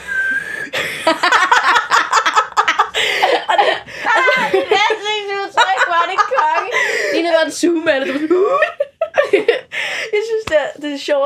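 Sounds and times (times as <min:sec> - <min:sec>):
short high-pitched whistling while breathing in: 0:00.0 - 0:00.7
laughter: 0:00.7 - 0:07.3, 0:08.0 - 0:09.7
speech: 0:01.0 - 0:01.4, 0:07.2 - 0:08.7, 0:10.2 - 0:11.2.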